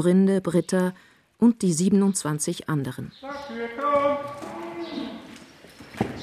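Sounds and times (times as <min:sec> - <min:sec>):
speech: 0:00.0 - 0:05.1
cattle hooves shuffling and thudding on a barn floor: 0:03.2 - 0:06.2.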